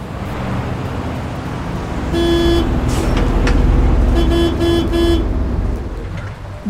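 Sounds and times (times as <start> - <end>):
city bus engine droning while riding in the rain: 0.0 - 6.6
city traffic rumble in the rain: 0.0 - 6.6
rain in the city: 0.0 - 6.6
car horn honking: 2.1 - 5.5.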